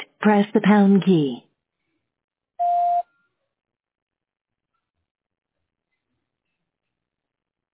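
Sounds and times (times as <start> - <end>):
speech: 0.2 - 1.4
voicemail recording start beep: 2.6 - 3.1.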